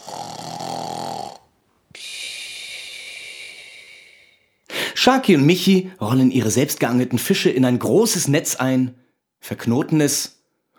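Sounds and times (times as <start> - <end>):
quiet snoring during deep sleep: 0.0 - 4.4
speech: 5.0 - 10.4.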